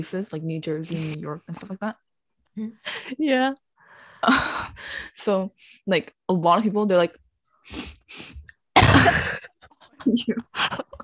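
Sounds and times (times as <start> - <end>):
speech: 0.0 - 3.6, 4.2 - 8.4, 9.0 - 9.4, 10.0 - 11.0
person coughing: 8.7 - 9.5.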